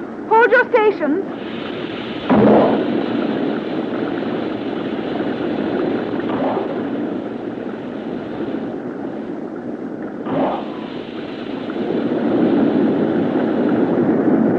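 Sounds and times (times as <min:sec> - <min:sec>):
speech: 0:00.4 - 0:01.5
spaceship emergency jets roaring: 0:02.3 - 0:09.0, 0:10.2 - 0:14.4.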